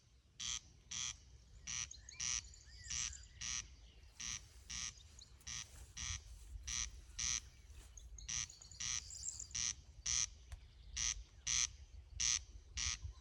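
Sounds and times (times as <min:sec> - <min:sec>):
corncrake calling: 0:00.4 - 0:13.1.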